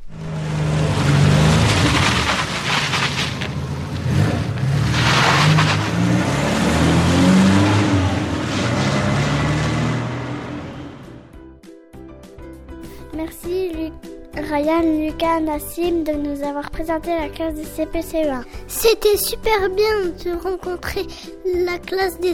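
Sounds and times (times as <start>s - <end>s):
car engine revving: 0.0s - 11.4s
speech: 14.6s - 22.3s.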